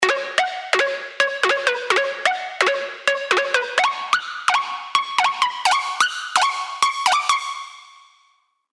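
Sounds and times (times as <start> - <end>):
lo-fi percussion: 0.0 - 8.0.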